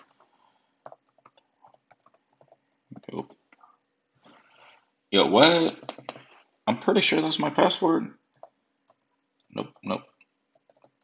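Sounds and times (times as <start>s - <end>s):
typing on a computer keyboard while entering a password: 0.0s - 3.4s, 5.8s - 6.2s, 8.3s - 11.0s
speech: 3.1s - 3.4s, 5.1s - 5.8s, 6.8s - 8.2s, 9.6s - 10.1s.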